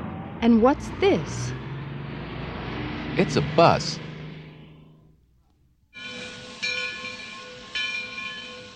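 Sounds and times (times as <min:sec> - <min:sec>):
speech: 0:00.4 - 0:01.6, 0:03.2 - 0:04.1
train hissing rumble with whistle-like tones: 0:06.0 - 0:08.7.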